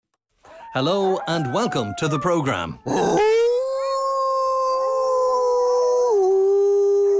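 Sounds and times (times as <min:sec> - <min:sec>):
speech: 0:00.7 - 0:03.3
grey wolf howling: 0:02.8 - 0:07.1.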